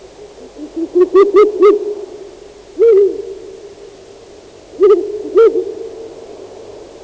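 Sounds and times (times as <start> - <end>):
Strix uralensis calling: 0.1 - 4.0, 4.7 - 6.3.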